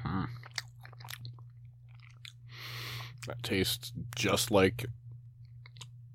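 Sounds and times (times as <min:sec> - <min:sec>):
chewing a small edge piece of a cheese curd patty: 0:00.3 - 0:03.4, 0:05.4 - 0:06.0
speech: 0:03.2 - 0:05.0.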